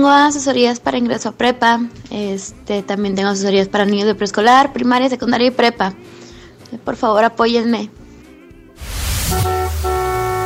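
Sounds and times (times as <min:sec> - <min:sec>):
speech: 0:00.0 - 0:08.0
rushing noise: 0:08.8 - 0:10.4
car horn honking: 0:09.2 - 0:10.4.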